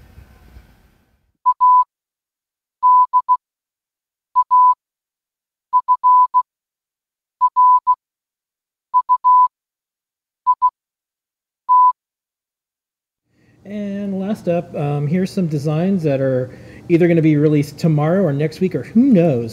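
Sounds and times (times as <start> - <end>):
electronic Morse code beeps sent between circuit boards: 1.5 - 1.9, 2.8 - 3.4, 4.4 - 4.8, 5.7 - 6.4, 7.4 - 8.0, 9.0 - 9.5, 10.5 - 10.7, 11.7 - 12.0
speech: 13.7 - 19.5.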